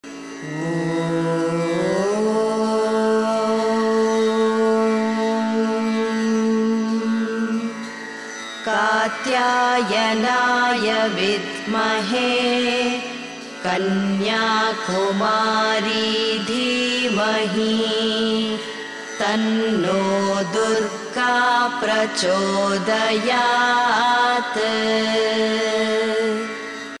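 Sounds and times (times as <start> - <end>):
woman chanting a mantra: 0.4 - 7.9, 8.6 - 26.6.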